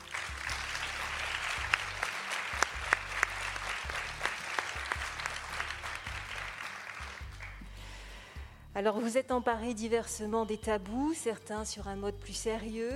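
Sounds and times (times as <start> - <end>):
audience applause: 0.0 - 7.6
speech: 8.8 - 12.9.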